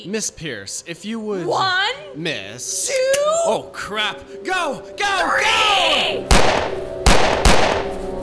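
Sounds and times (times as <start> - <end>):
speech: 0.1 - 6.8
sharp loud gunshot with ringing tail: 6.3 - 8.0.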